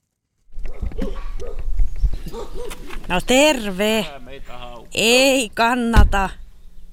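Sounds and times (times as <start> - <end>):
rustle of outdoor movement: 0.0 - 6.9
Karelian bear dogs barking at arrivals: 0.6 - 3.0
speech: 2.6 - 6.4.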